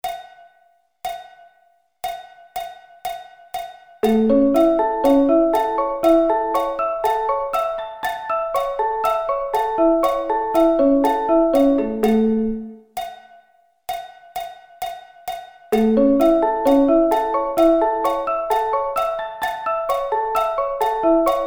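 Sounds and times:
A arpeggio inversions: 0:04.0 - 0:12.8, 0:15.8 - 0:21.4.

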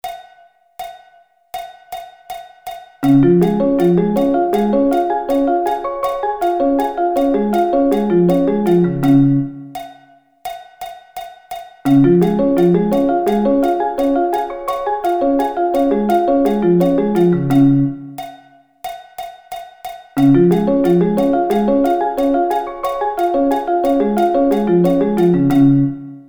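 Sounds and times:
D-flat arpeggio inversions: 0:03.0 - 0:09.7, 0:11.9 - 0:18.2, 0:20.2 - 0:26.2.

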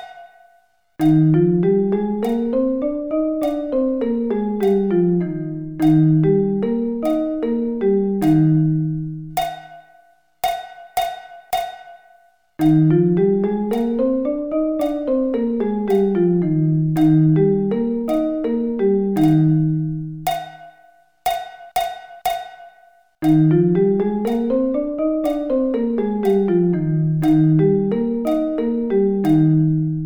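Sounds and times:
E flat scale over one octave: 0:01.0 - 0:09.5, 0:12.6 - 0:20.4, 0:23.2 - 0:30.0.

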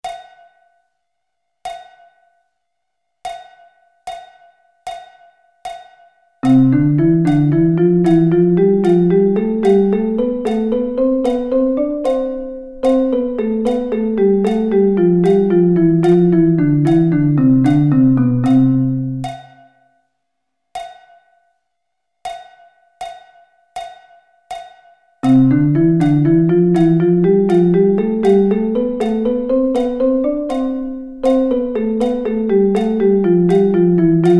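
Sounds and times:
drum double sticking pattern: 0:03.3 - 0:19.7, 0:23.8 - 0:34.3.

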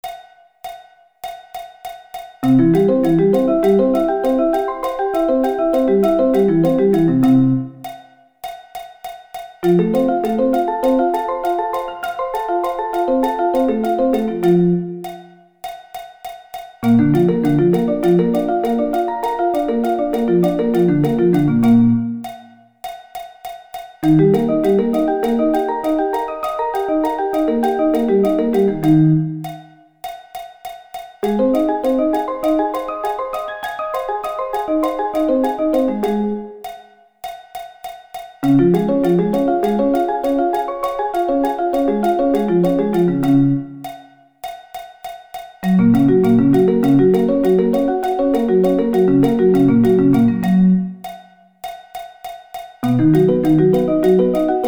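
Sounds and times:
arpeggio inversions: 0:02.5 - 0:07.8, 0:09.6 - 0:15.1, 0:16.8 - 0:22.3, 0:24.0 - 0:29.5, 0:31.2 - 0:36.6, 0:38.4 - 0:43.8, 0:45.6 - 0:50.9, 0:52.8 - 0:54.6.

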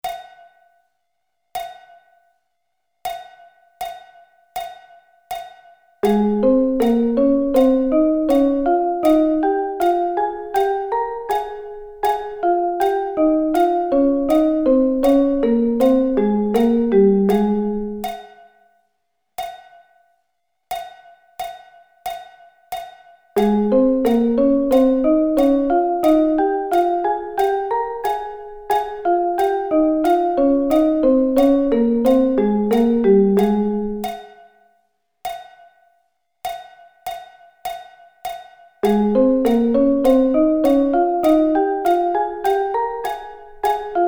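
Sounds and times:
thirds in A flat: 0:06.0 - 0:18.2, 0:23.4 - 0:34.2, 0:38.8 - 0:44.0.

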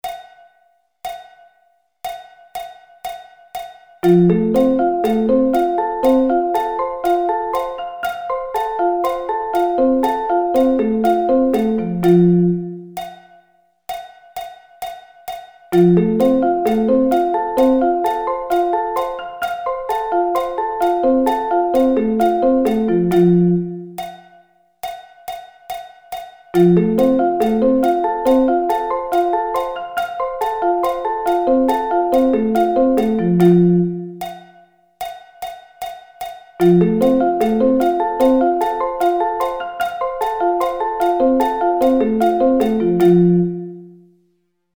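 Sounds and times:
arpeggio inversions: 0:04.0 - 0:13.0, 0:15.8 - 0:24.0, 0:26.6 - 0:34.4, 0:36.6 - 0:44.0.

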